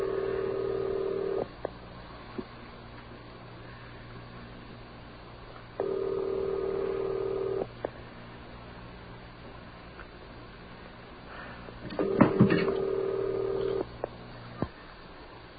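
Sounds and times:
telephone ringback tone through the earpiece: 0:00.0 - 0:01.5, 0:05.8 - 0:07.7, 0:12.0 - 0:13.8.

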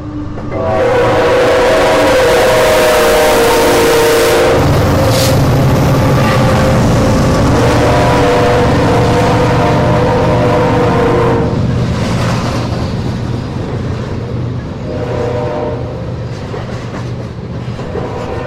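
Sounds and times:
heavy freight rail cars rolling past: 0:00.0 - 0:18.4
BNSF freight locomotive horn: 0:00.4 - 0:11.6, 0:14.8 - 0:16.0, 0:17.9 - 0:18.4.

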